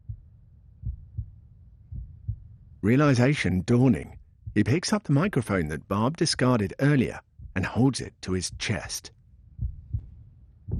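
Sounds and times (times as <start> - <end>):
soft heartbeat: 0.0 - 2.8, 4.2 - 4.6, 7.2 - 7.8, 8.4 - 8.9, 9.5 - 10.7
speech: 2.8 - 9.2.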